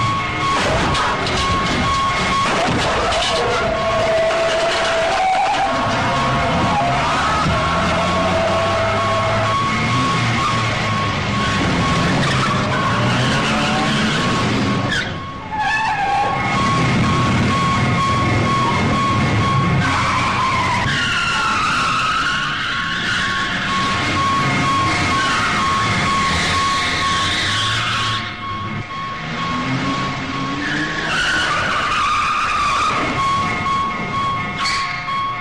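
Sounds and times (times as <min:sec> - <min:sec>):
car tires screeching and skidding during a chase: 0:00.0 - 0:35.1
car engines roaring and revving during a chase: 0:00.0 - 0:35.3.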